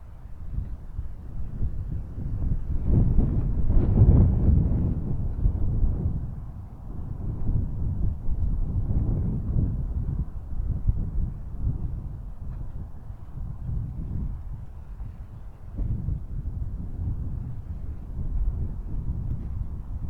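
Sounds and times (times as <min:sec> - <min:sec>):
soft wind: 0:00.0 - 0:20.0.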